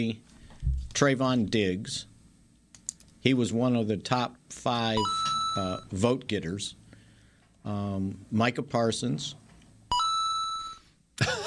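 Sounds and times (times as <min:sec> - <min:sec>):
speech: 0:00.0 - 0:00.3, 0:01.0 - 0:02.1, 0:03.2 - 0:06.8, 0:07.6 - 0:09.4
electronic phone beep: 0:05.0 - 0:05.9, 0:09.9 - 0:10.9.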